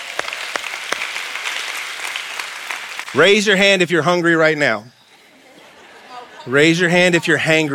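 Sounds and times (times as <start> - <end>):
large audience clapping hands: 0.0 - 3.8
speech: 3.1 - 5.0, 6.4 - 7.7
laughter: 5.1 - 7.7.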